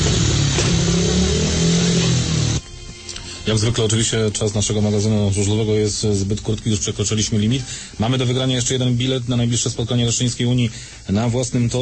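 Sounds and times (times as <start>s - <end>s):
speedway motorcycle engine revving: 0.0s - 2.6s
speech: 3.5s - 11.8s.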